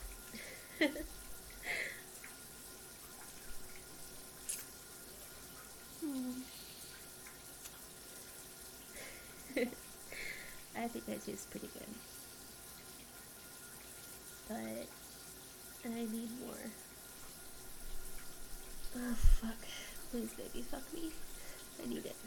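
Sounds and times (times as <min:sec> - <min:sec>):
water running from a tap: 0:00.0 - 0:22.2
speech: 0:00.8 - 0:01.2, 0:10.8 - 0:12.2, 0:15.8 - 0:16.9, 0:19.0 - 0:22.2
faint vocal sounds or squeaks: 0:06.0 - 0:06.9.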